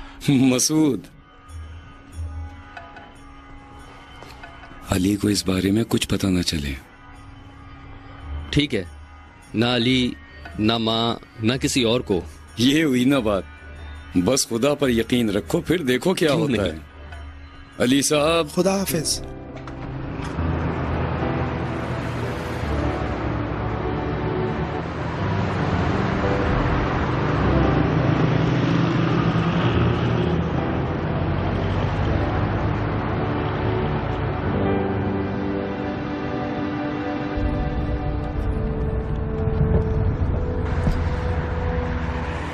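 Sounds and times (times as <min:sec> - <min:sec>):
speech: 0:00.2 - 0:01.2, 0:04.9 - 0:06.9, 0:08.5 - 0:13.5, 0:14.1 - 0:16.9, 0:17.8 - 0:19.4
car engine hum: 0:19.4 - 0:42.5.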